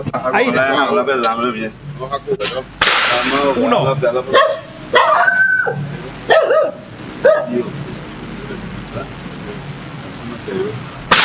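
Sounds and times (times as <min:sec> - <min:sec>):
speech: 0:00.0 - 0:07.8, 0:10.4 - 0:10.9
steady hiss: 0:00.0 - 0:11.2
agitated dogs barking: 0:04.3 - 0:07.9.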